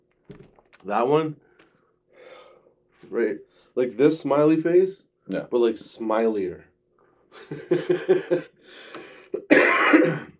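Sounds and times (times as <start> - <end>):
speech: 0.3 - 1.5, 3.1 - 6.7, 7.4 - 8.9
laughter: 7.4 - 8.6
person coughing with throat-clearing and hacking coughs: 9.0 - 10.3.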